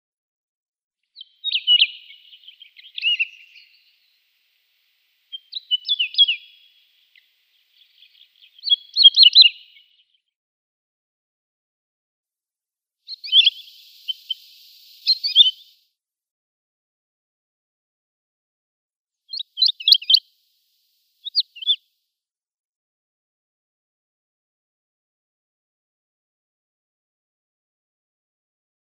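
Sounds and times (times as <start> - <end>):
Wood Lark calling: 1.2 - 10.1, 13.1 - 15.8, 19.3 - 21.8.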